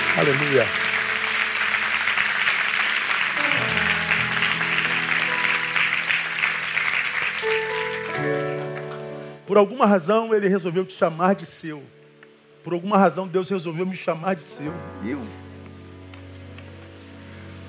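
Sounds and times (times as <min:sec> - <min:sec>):
large crowd clapping: 0:00.0 - 0:09.4
sustained keyboard chords: 0:00.0 - 0:17.6
speech: 0:00.2 - 0:00.9, 0:09.5 - 0:12.0, 0:12.6 - 0:15.4.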